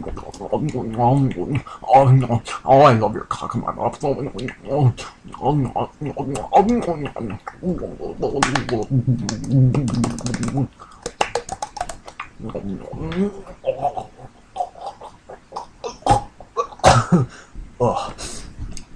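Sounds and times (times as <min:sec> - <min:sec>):
speech: 0:00.0 - 0:11.0, 0:12.4 - 0:14.0, 0:17.1 - 0:18.4
strained throaty vocal noises and gasps: 0:00.0 - 0:18.6
harsh explosive coughing: 0:15.9 - 0:17.4.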